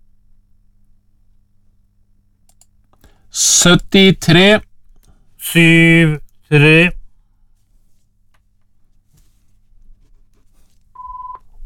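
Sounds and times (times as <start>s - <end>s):
speech: 3.4s - 4.7s, 5.5s - 7.0s
telephone ringing: 11.0s - 11.4s.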